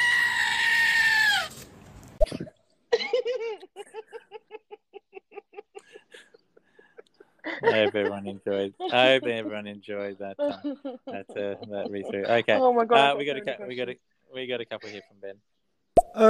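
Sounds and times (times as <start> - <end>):
goat screaming and bleating: 0.0 - 1.6
laughter: 3.0 - 14.0
speech: 7.6 - 15.5.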